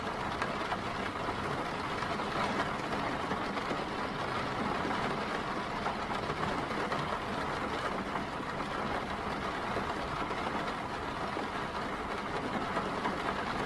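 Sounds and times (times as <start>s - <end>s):
steady dense rain: 0.0s - 13.6s.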